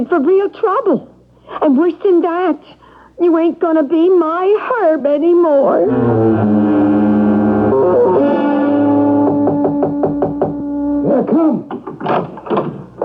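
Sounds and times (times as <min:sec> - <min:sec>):
speech: 0:00.0 - 0:06.9, 0:11.2 - 0:12.3
loud sustained somewhat distorted music score: 0:05.9 - 0:11.6
sharp raps on a door: 0:09.2 - 0:10.7.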